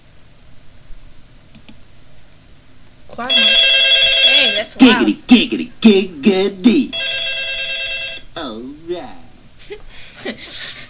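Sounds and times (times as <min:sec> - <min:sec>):
steady electronic hum: 0:00.0 - 0:10.8
speech: 0:03.2 - 0:03.6, 0:04.6 - 0:07.0
phone ringtone playing a bright buzzy melodic tune: 0:03.3 - 0:04.7, 0:07.0 - 0:08.3
laughter: 0:09.6 - 0:10.8.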